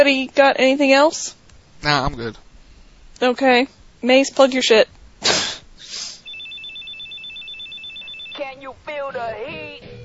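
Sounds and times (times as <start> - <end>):
speech: 0.0 - 2.4, 3.2 - 5.3, 8.6 - 10.0
telephone ringing with electronic trill: 6.2 - 10.0.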